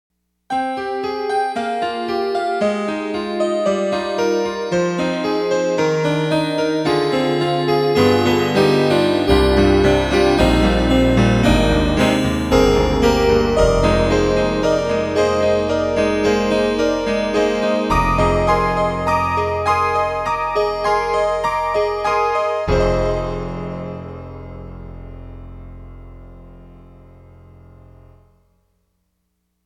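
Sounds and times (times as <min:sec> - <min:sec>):
Yamaha TG55 synthesizer piano preset: 0:00.5 - 0:28.6.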